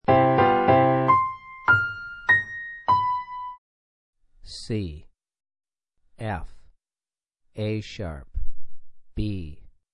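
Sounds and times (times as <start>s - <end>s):
piano four note melodic ear training exercise: 0.0s - 3.6s.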